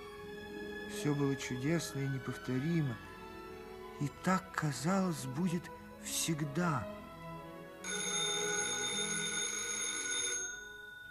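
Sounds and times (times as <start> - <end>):
speech: 0.9 - 3.1, 4.0 - 7.0
old-fashioned telephone bell ringing: 7.8 - 11.0.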